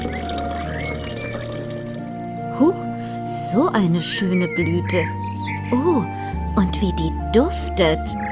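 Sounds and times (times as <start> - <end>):
water pouring from a watering can onto a plant: 0.0 - 2.4
speech: 2.6 - 2.8, 3.5 - 8.2.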